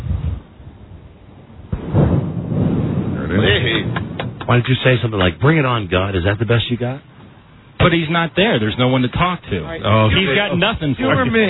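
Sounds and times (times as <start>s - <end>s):
thunder rumbling during a storm: 0.0s - 8.0s
sharp thunder crack during a storm: 1.6s - 5.7s
speech: 4.5s - 7.1s, 7.8s - 11.4s.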